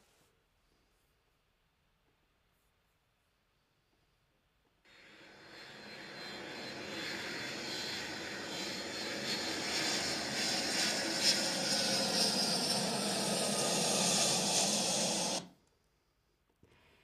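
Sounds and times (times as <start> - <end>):
airplane taking off passing overhead: 4.9 - 15.5.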